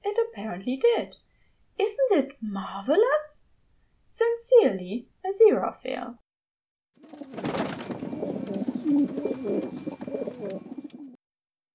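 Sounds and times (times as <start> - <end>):
speech: 0.4 - 3.5, 4.1 - 6.2, 7.0 - 7.8, 8.9 - 10.7
trained carrier pigeon cooing: 7.0 - 11.2.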